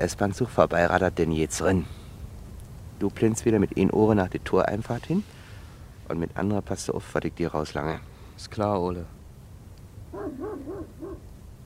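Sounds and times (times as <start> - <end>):
speech: 0.0 - 2.0, 3.0 - 5.4, 6.1 - 9.2
low hum: 0.0 - 11.6
dog barking: 10.1 - 11.3.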